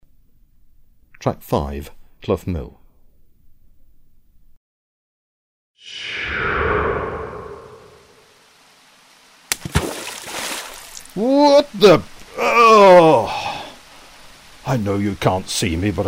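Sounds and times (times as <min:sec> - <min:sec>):
speech: 0:01.2 - 0:02.8, 0:11.2 - 0:12.1, 0:12.7 - 0:13.4, 0:14.7 - 0:16.0
heavy splash of someone dropping into knee-deep water in a mill goit: 0:09.5 - 0:11.1.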